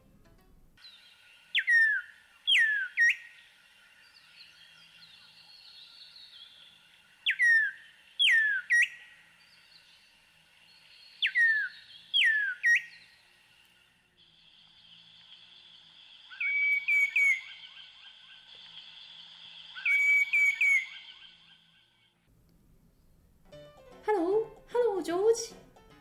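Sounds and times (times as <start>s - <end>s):
green cuckoo whistled calls in Uganda: 0.8s - 9.9s, 11.0s - 13.2s, 16.3s - 18.8s, 19.7s - 21.6s
speech: 25.1s - 25.6s.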